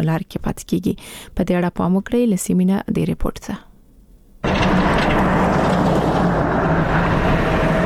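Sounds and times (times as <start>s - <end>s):
speech: 0.0s - 3.7s
motor vehicle engine rumbling on a rough potholed mountain road: 4.4s - 7.8s.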